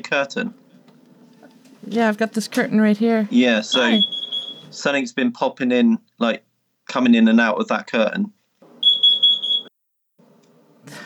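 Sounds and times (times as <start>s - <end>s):
speech: 0.0s - 0.6s, 1.8s - 8.4s
shrill high-pitched smoke alarm beeping: 3.6s - 4.8s, 8.8s - 9.7s.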